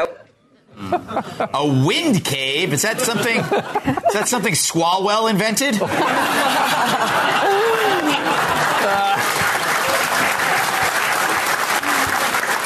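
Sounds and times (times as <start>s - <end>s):
laughter: 0.0s - 1.7s, 2.6s - 4.6s, 5.7s - 12.4s
speech: 0.9s - 9.4s
crowd applause: 6.0s - 12.6s
voices over clapping: 8.5s - 12.6s.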